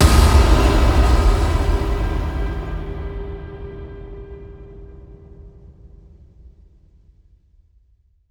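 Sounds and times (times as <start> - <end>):
cinematic impacts: 0.0 - 6.5.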